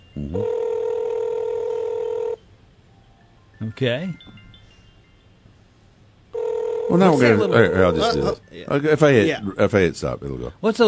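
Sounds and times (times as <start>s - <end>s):
speech: 0.2s - 0.6s, 3.6s - 4.4s, 6.9s - 10.8s
phone ringing during outgoing call: 0.2s - 2.4s, 6.3s - 8.8s.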